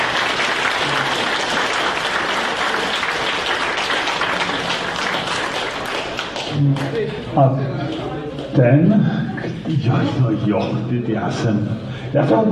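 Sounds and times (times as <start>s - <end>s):
large audience applauding: 0.0s - 7.3s
faint crowd murmur: 0.0s - 12.5s
laughter: 6.6s - 12.5s
speech: 7.4s - 7.8s, 8.5s - 12.5s.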